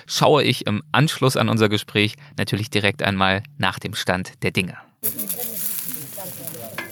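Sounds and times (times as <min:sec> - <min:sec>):
speech: 0:00.0 - 0:05.5
faint murmuring voices: 0:05.0 - 0:06.9
fat sizzling loudly in a pan while wild boar cooks: 0:05.0 - 0:06.9.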